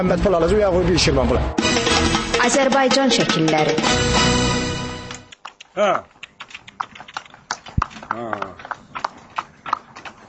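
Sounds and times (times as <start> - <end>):
speech: 0.0 - 4.4, 5.8 - 6.1, 8.1 - 8.6
horse hooves clip-clopping on a village road in Azerbaijan: 5.3 - 10.2.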